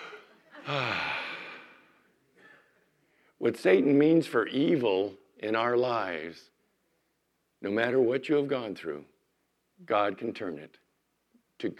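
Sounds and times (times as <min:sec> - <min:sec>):
deep breath: 0:00.0 - 0:03.4
speech: 0:00.7 - 0:01.0, 0:03.4 - 0:06.5, 0:07.6 - 0:09.1, 0:09.8 - 0:10.8, 0:11.6 - 0:11.7.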